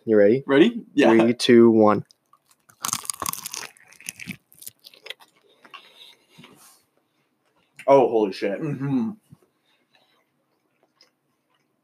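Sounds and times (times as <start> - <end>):
speech: 0.1 - 2.1, 7.9 - 9.2
chewing crunches of fried chicken: 2.0 - 6.0
crispy bite into rice-flour coated fried chicken: 2.4 - 5.3.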